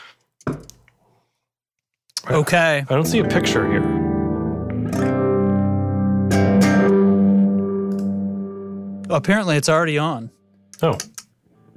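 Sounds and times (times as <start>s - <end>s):
speech: 2.3s - 4.0s, 9.1s - 11.2s
brighter plucked guitar attacks: 2.3s - 10.7s
heavily guitar tones through a dark ambient reverb effect pedal: 2.9s - 10.1s.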